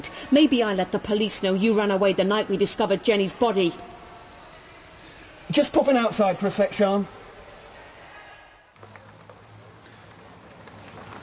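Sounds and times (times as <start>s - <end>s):
speech: 0.3s - 3.9s, 5.5s - 7.2s
rain falling outdoors: 8.8s - 11.2s.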